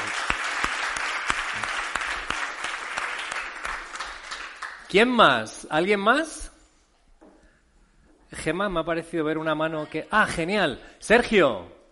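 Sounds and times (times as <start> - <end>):
audience applauding: 0.0 - 5.0
speech: 4.9 - 6.4, 8.4 - 11.8.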